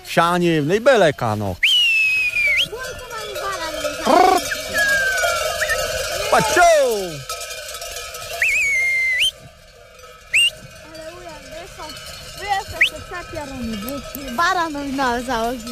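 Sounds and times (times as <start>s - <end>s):
livestock bell hung on a ram ringing: 0.0s - 15.7s
speech: 0.2s - 1.6s, 4.0s - 4.4s, 6.3s - 7.3s, 13.6s - 15.7s
sharp rising whistles: 1.6s - 2.8s, 4.2s - 6.1s, 8.3s - 9.5s, 10.3s - 10.7s.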